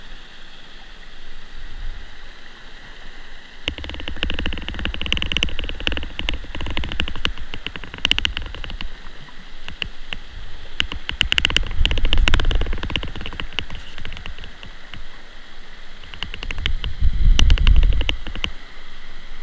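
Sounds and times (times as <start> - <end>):
spinner dolphin clicks: 3.6 - 18.7.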